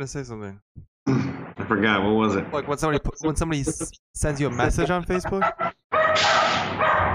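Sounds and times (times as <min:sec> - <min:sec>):
speech: 0:00.0 - 0:06.3
dog barking and yelping excitedly: 0:05.4 - 0:07.1.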